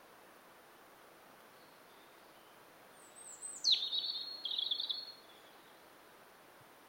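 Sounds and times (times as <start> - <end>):
soft hiss: 0.0 - 6.8
European robin Erithacus rubecula singing whistle and trilling warble: 1.6 - 5.8.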